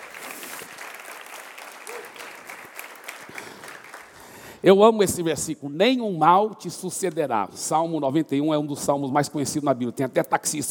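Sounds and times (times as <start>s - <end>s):
audience applause: 0.0s - 4.4s
speech: 4.6s - 10.7s.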